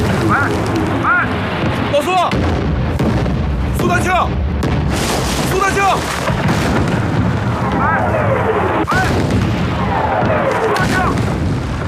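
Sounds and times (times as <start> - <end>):
rumbling roar of artillery shelling on a battlefield: 0.0 - 3.8, 4.7 - 11.8
explosion during artillery shelling of a battlefield position: 0.0 - 11.8.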